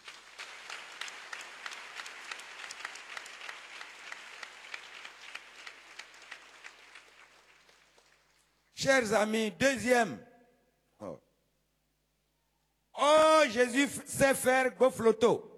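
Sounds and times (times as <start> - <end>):
church congregation applause: 0.0 - 8.4
speech: 8.8 - 10.3, 13.5 - 15.5.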